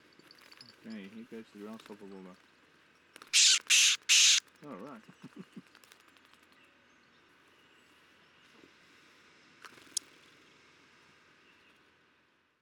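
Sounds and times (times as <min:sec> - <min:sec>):
common grasshopper warbler calls while held in the hand and after release: 0:03.4 - 0:04.4.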